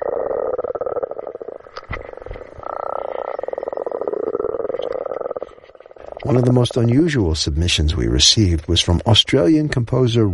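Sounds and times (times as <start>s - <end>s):
spring frogs croaking, recorded underwater: 0.0s - 7.3s
speech: 6.2s - 10.3s.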